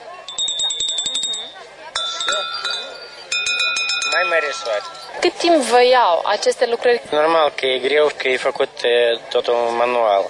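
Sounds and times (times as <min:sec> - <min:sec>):
faint voices murmuring: 0:00.0 - 0:10.2
small handmade bells ringing: 0:00.2 - 0:06.2
speech: 0:02.4 - 0:03.0, 0:04.1 - 0:10.2.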